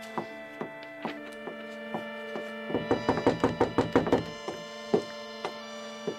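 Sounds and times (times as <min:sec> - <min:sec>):
steady sustained musical tone humming: 0:00.0 - 0:06.1
knocking on a door at night: 0:02.7 - 0:05.1.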